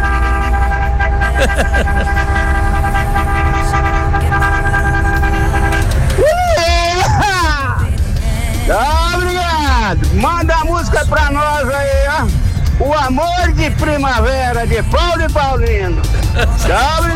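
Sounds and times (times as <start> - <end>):
truck air horn blast: 0.0 - 7.0
constant low engine rumble: 0.0 - 17.1
laughter: 1.1 - 2.5, 16.1 - 17.1
speech: 14.8 - 17.1.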